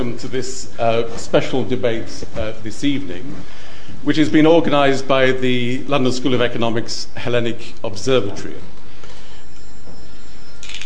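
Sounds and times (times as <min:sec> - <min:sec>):
speech: 0:00.0 - 0:08.7
steady noise at an evening debate: 0:00.0 - 0:10.8
mobile phone ringing with a bright electronic chirp: 0:09.1 - 0:10.8.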